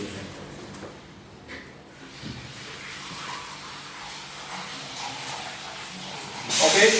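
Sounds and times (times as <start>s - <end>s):
hop trub draining from brew kettle valve: 2.5s - 6.9s.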